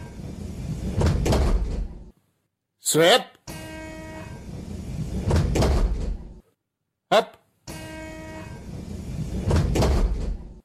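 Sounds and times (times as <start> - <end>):
train rumbling before departure: 0.0 - 2.1, 4.4 - 6.4, 8.6 - 10.6
train sliding-door thuds: 0.0 - 2.1, 4.4 - 6.4, 8.6 - 10.6
speech: 2.9 - 3.4, 7.1 - 7.4.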